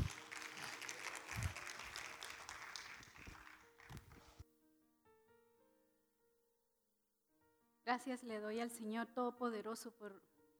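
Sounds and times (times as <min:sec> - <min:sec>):
audience at a worship service applauding: 0:00.0 - 0:04.4
speech: 0:07.9 - 0:10.3.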